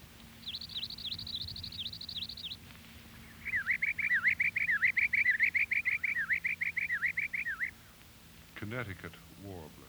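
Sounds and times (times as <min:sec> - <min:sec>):
palm warbler singing a trill: 0:00.4 - 0:02.6, 0:03.4 - 0:07.7.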